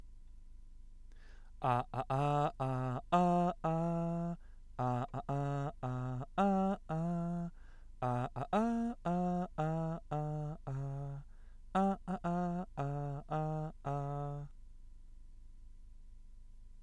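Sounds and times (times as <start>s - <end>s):
person singing a birthday song without lyrics: 1.6s - 14.6s.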